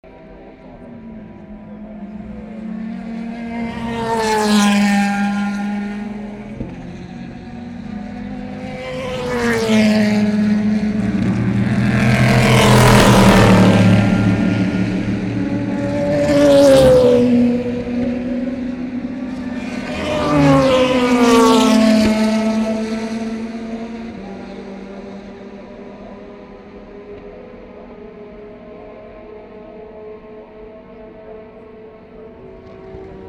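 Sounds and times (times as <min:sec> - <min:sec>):
Corvette V8 engine: 0:00.0 - 0:33.2
cars passing at Tertre Rouge: 0:00.1 - 0:33.2.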